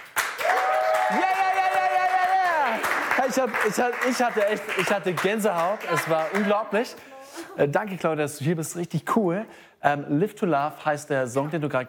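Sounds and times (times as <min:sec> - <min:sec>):
small studio crew applauding after a live song performance: 0:00.0 - 0:06.9
whooping cheers from a studio crew: 0:00.4 - 0:02.9
speech: 0:03.3 - 0:11.8.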